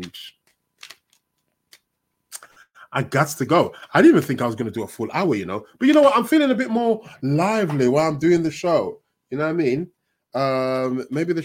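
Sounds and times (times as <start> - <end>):
speech: 0.0 - 0.4, 2.9 - 11.4
deck of tarot cards being shuffled: 0.0 - 1.9.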